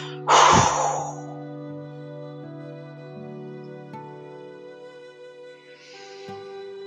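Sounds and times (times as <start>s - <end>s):
deep forceful exhale after a held breath during a guided breathing exercise: 0.0s - 1.4s
steady low drone: 0.0s - 1.6s.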